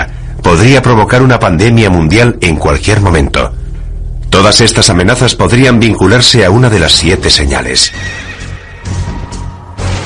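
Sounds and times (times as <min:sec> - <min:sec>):
speech: 0:00.6 - 0:03.6, 0:04.3 - 0:08.2
horse neighing: 0:07.8 - 0:09.4.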